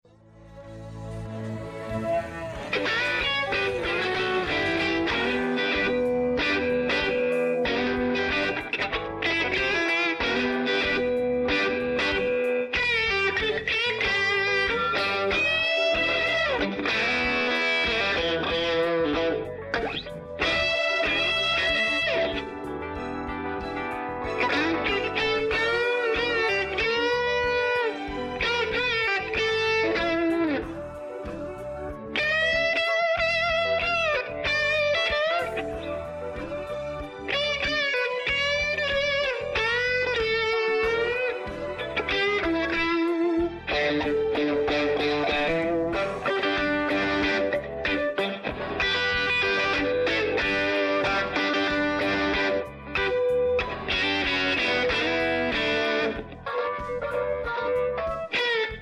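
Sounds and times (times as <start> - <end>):
dry guitar solo: 0.3 - 58.8.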